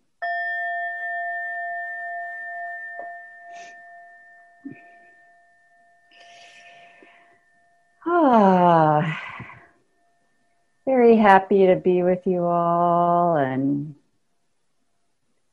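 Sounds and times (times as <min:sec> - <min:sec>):
meditation bell struck to begin a group meditation: 0:00.2 - 0:10.9
speech: 0:11.2 - 0:14.0.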